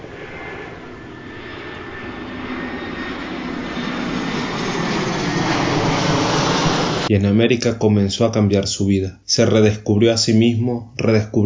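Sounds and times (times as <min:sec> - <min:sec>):
airplane engine roar with low rumble and faint high whine: 0:00.0 - 0:07.1
speech: 0:07.1 - 0:11.4.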